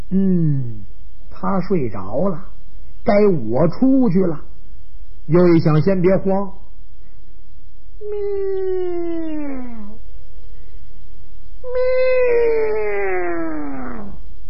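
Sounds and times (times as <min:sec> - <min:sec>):
speech: 0:00.1 - 0:00.8, 0:01.4 - 0:04.5, 0:05.3 - 0:06.6, 0:08.0 - 0:09.2
human voice imitating a cat meowing: 0:08.0 - 0:10.0, 0:11.6 - 0:14.2.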